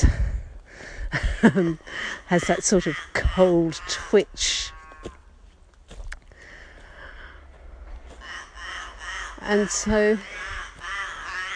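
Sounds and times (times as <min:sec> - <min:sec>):
speech: 0:00.0 - 0:00.2, 0:01.1 - 0:05.2, 0:09.5 - 0:10.4
low rumble of open-air background: 0:00.0 - 0:11.5
birds giving harsh nasal calls on a cold morning walk: 0:02.4 - 0:05.2, 0:08.2 - 0:11.5.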